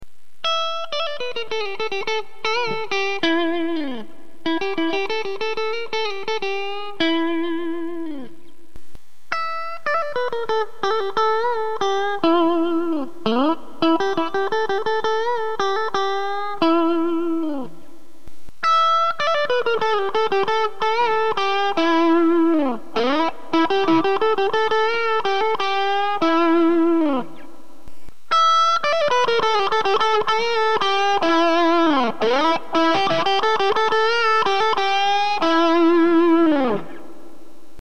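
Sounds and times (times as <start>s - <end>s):
Tweed OD overdrive tone with roll on: 0.0s - 37.8s.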